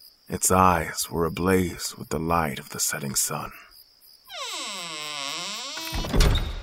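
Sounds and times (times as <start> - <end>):
speech: 0.3 - 3.6
heavy manor door hinge creaking: 4.3 - 6.6.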